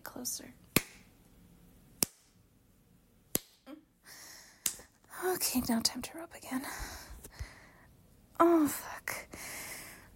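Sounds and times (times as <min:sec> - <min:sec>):
speech: 0:00.2 - 0:00.6, 0:05.2 - 0:07.0, 0:08.4 - 0:09.4
hand slapping bare skin: 0:00.7 - 0:01.1, 0:02.0 - 0:02.4, 0:03.3 - 0:03.6, 0:04.6 - 0:04.9.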